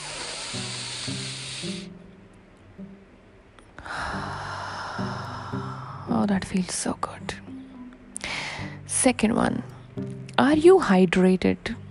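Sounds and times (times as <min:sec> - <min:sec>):
deep breath in and out: 0:00.0 - 0:01.9, 0:03.8 - 0:06.1, 0:07.6 - 0:08.8
soft music: 0:00.0 - 0:11.8
speech: 0:06.2 - 0:07.4, 0:09.0 - 0:11.8.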